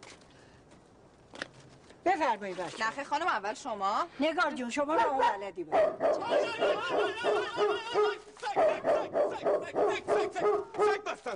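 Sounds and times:
speech: 2.2s - 11.3s
dog barking and yipping: 4.9s - 11.0s.

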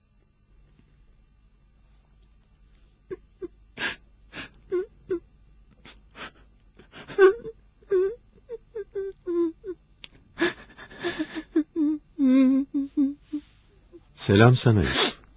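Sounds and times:
person crying with wailing moans and whimpering sobs: 3.1s - 5.2s, 5.9s - 9.8s, 10.4s - 13.4s
speech: 14.3s - 15.1s.

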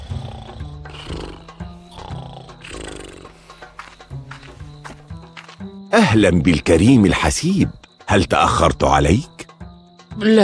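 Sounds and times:
lion roaring in deep rumbling growls: 0.0s - 3.4s
speech: 5.9s - 9.3s, 10.2s - 10.4s.

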